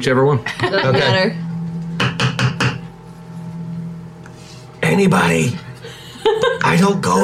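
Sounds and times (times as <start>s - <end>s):
speech: 0.0s - 1.4s, 4.9s - 5.6s, 6.3s - 7.2s
low steady hum: 0.0s - 7.2s
laughter: 0.4s - 1.4s, 5.7s - 6.9s
knocking on a wooden door: 2.0s - 2.8s.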